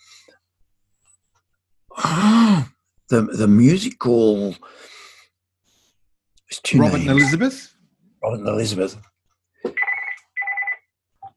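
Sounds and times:
speech: 3.1 - 4.9, 6.7 - 9.1
telephone ringing with a trilling electronic tone: 9.8 - 10.9.

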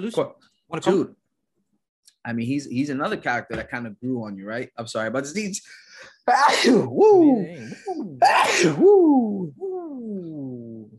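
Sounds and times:
speech: 0.0 - 1.2, 2.2 - 10.5
loud sneezes: 6.3 - 7.0, 8.2 - 8.8.

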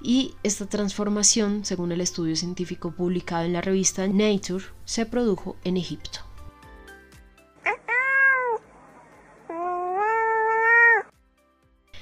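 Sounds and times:
speech: 0.0 - 6.3
cat meowing: 7.6 - 8.7, 9.5 - 11.1.

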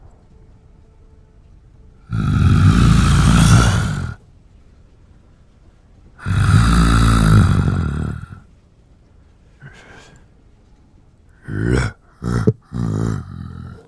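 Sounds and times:
creature snarls and snorts: 2.1 - 4.2, 6.2 - 8.4, 11.4 - 13.8
deep creature growling: 2.1 - 4.2, 6.2 - 8.5, 9.6 - 10.2, 11.3 - 13.8.

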